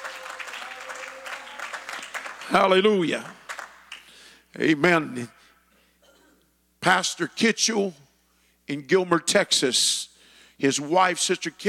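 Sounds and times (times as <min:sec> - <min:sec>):
church congregation applauding: 0:00.0 - 0:04.4
speech: 0:02.5 - 0:03.4, 0:04.6 - 0:05.4, 0:06.8 - 0:08.0, 0:08.7 - 0:11.6.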